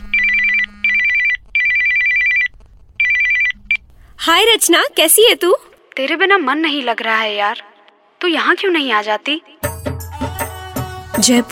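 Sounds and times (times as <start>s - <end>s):
phone ringtone for an incoming call: 0.0s - 3.7s
speech: 4.2s - 9.6s, 11.2s - 11.5s.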